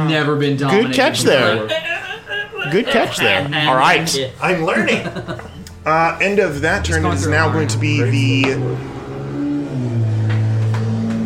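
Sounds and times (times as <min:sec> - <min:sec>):
speech: 0:00.0 - 0:01.9, 0:02.6 - 0:08.9
laughter: 0:00.7 - 0:05.8, 0:06.6 - 0:08.7
chainsaw engine revving up: 0:06.6 - 0:11.2.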